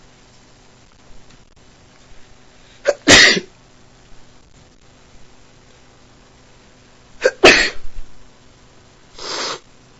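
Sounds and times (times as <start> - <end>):
person who has just woken up sneezing: 2.8 - 3.5, 7.2 - 7.8, 9.2 - 9.7
quick intake of breath: 9.1 - 9.7.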